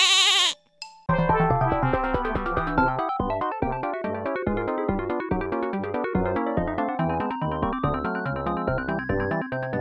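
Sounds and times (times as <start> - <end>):
goat bleating: 0.0 - 0.6
bouncy rhythmic music: 0.8 - 9.8.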